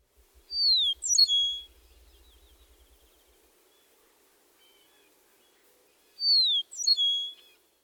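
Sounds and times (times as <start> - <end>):
eastern meadowlark singing with guttural ending: 0.5 - 3.3.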